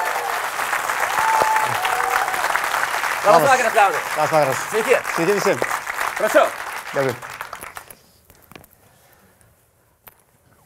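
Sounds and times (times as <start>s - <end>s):
audience applause welcoming a guest to an evening talk event: 0.0s - 7.9s
speech: 3.2s - 7.3s.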